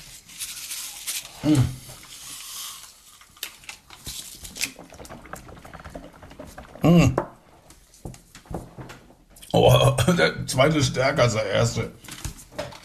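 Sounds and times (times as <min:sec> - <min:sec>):
sherbet powder fizzing with liquid: 0:00.0 - 0:08.1
speech: 0:01.4 - 0:01.8, 0:06.8 - 0:07.3, 0:10.1 - 0:12.1.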